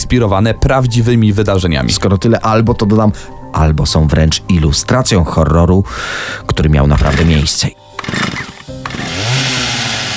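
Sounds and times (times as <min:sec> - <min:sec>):
speech: 0:00.1 - 0:08.3
chainsaw engine sputtering and revving: 0:07.0 - 0:07.4, 0:08.0 - 0:10.1.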